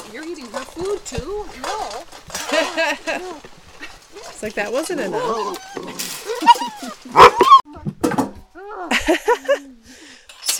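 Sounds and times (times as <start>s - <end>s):
speech: 0.1s - 3.6s, 4.2s - 5.9s
laughter: 2.5s - 3.4s, 8.9s - 9.7s
puppies yipping and whimpering: 4.1s - 7.6s.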